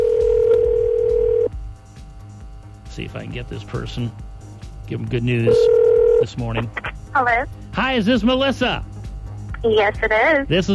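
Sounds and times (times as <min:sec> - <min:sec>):
telephone dial tone: 0:00.0 - 0:01.5, 0:05.5 - 0:06.3
speech: 0:03.0 - 0:04.3, 0:04.9 - 0:08.9, 0:09.6 - 0:10.7.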